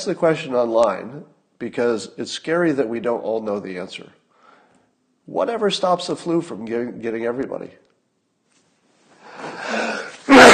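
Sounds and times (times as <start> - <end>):
speech: 0.0 - 4.2, 5.3 - 7.9
person sneezing: 9.3 - 10.5.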